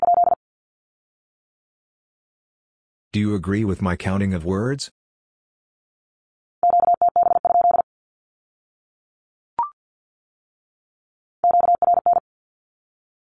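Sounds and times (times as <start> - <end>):
rapid Morse code beeps sending radio Q-codes: 0.0 - 0.4, 6.6 - 7.8, 11.4 - 12.2
speech: 3.1 - 5.0.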